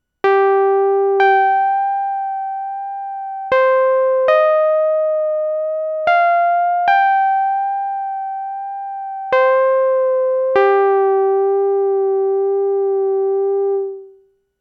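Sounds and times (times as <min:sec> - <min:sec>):
Roland Juno-6 analog synthesizer: 0:00.2 - 0:14.2.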